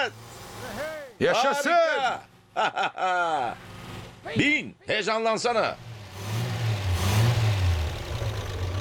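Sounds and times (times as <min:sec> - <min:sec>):
engine running and revving after being sprayed: 0:00.1 - 0:01.0, 0:03.6 - 0:04.2, 0:05.8 - 0:08.7
laughter: 0:01.2 - 0:03.6
speech: 0:01.2 - 0:05.8.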